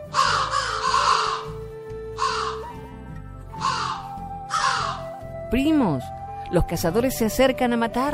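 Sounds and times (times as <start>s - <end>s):
crows cawing loudly and harshly: 0.0s - 2.8s, 3.5s - 5.2s
speech: 5.5s - 8.1s.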